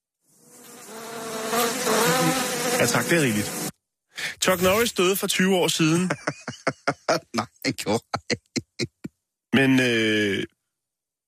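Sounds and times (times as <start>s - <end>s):
bees buzzing: 0.4s - 3.7s
speech: 2.8s - 3.6s, 4.5s - 8.9s, 9.6s - 10.5s
laughter: 5.8s - 9.8s.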